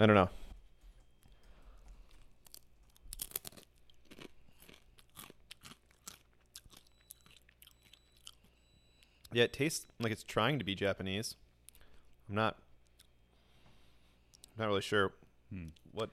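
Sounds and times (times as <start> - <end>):
speech: 0.0 - 0.4, 9.3 - 11.4, 12.3 - 12.6, 14.6 - 16.1
soy wasabi flavoured snack chip being bitten and chewed: 2.4 - 8.4.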